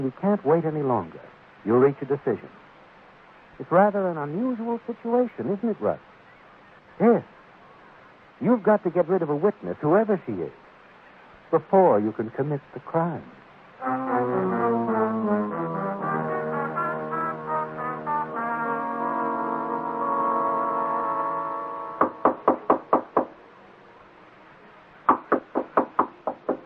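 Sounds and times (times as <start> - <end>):
speech: 0.0 - 2.6, 3.6 - 6.1, 7.0 - 7.4, 8.4 - 10.6, 11.5 - 14.6
sustained brassy musical chord: 13.8 - 22.2
firm knocking on a door: 22.0 - 23.3, 25.1 - 26.6.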